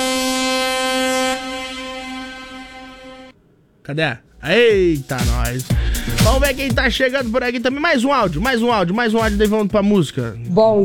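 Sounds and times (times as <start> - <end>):
vehicle horn blaring: 0.0 - 3.4
speech: 3.9 - 10.8.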